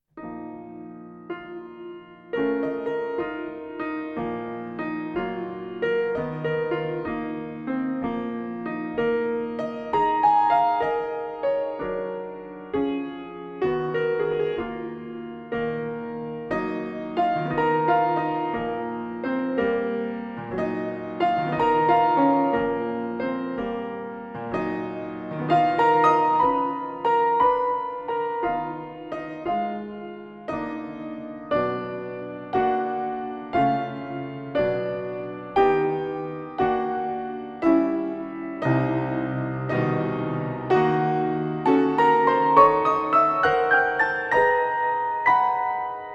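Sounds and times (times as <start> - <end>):
drunken piano playing: 0.0 - 46.1.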